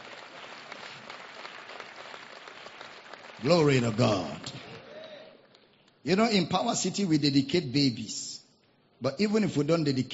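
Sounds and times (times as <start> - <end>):
large gathering applauding: 0.0 - 5.6
speech: 3.4 - 4.6, 6.0 - 8.3, 9.0 - 10.1.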